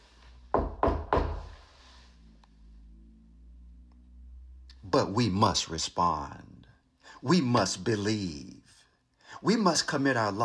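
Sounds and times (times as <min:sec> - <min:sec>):
quiet hum: 0:00.0 - 0:10.4
firm knocks on a wooden door: 0:00.6 - 0:01.5
speech: 0:04.9 - 0:06.5, 0:07.2 - 0:08.6, 0:09.3 - 0:10.4.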